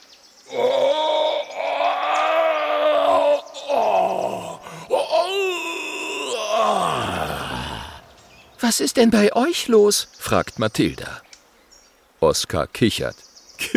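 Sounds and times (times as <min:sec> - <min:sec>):
large creature with toothache groaning in a cave: 0:00.5 - 0:08.3
speech: 0:08.7 - 0:11.3, 0:12.2 - 0:13.7.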